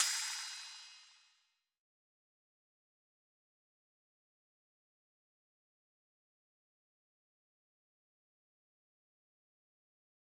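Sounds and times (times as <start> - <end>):
cymbal drum loop at 65 BPM: 0.0 - 1.1.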